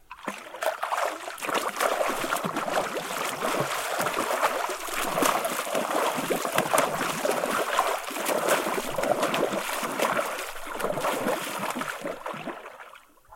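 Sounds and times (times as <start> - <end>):
human footsteps in water: 0.0 - 13.2.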